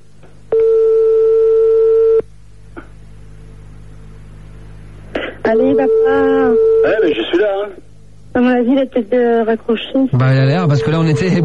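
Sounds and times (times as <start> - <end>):
faint hum: 0.0 - 11.4
telephone ringback tone on a live call: 0.5 - 2.2, 5.5 - 7.0
speech: 5.5 - 7.8, 8.4 - 11.4.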